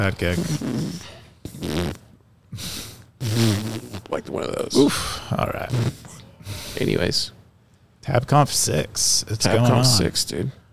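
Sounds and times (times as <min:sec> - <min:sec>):
speech: 0:00.0 - 0:07.4, 0:08.0 - 0:10.6
buzzy fart noises from a hardware fart device: 0:00.2 - 0:04.2, 0:05.6 - 0:06.2.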